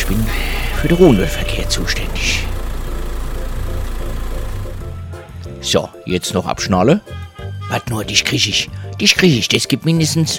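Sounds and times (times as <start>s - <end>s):
car engine idling then cutting out as the ignition is switched off: 0.0s - 5.6s
speech: 0.1s - 2.4s, 5.6s - 10.3s.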